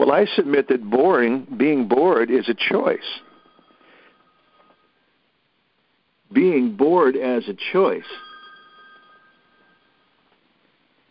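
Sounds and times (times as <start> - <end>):
speech: 0.0 - 3.3, 6.3 - 8.3
soft hiss: 0.0 - 11.1
telephone ringing with a thin electronic tone: 2.7 - 5.0, 8.1 - 10.2.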